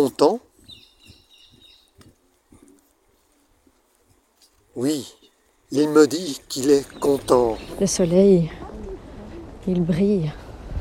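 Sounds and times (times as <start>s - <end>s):
speech: 0.0s - 0.5s, 4.8s - 8.6s, 9.6s - 10.4s
faint high bird chirps: 0.6s - 2.0s, 6.1s - 8.2s.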